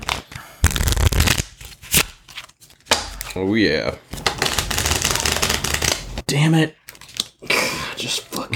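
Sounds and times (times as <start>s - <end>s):
deck of playing cards being shuffled: 0.0s - 3.3s, 4.2s - 6.2s
speech: 3.4s - 4.2s, 6.3s - 6.8s, 7.4s - 8.5s.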